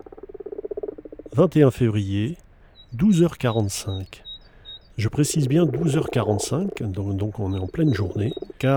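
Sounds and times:
common frog purring rattle in a water-filled wash house in Drôme, France: 0:00.0 - 0:01.4, 0:05.2 - 0:08.7
speech: 0:01.4 - 0:04.2, 0:05.0 - 0:08.7.

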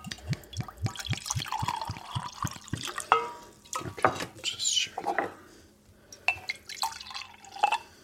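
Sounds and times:
coffee mead poured into a cup: 0:00.1 - 0:03.8, 0:06.4 - 0:07.8.

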